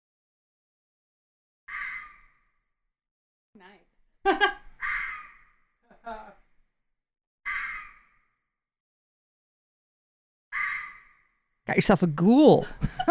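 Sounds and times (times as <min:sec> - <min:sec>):
bobcat screaming at night: 0:01.7 - 0:02.2, 0:04.8 - 0:05.5, 0:07.5 - 0:08.1
speech: 0:03.6 - 0:04.5, 0:11.7 - 0:13.0
laughter: 0:04.3 - 0:04.6, 0:12.6 - 0:13.0.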